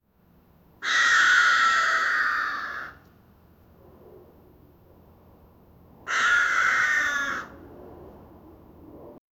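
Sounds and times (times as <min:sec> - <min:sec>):
distant crow cawing: 0:00.8 - 0:03.0, 0:06.0 - 0:07.6.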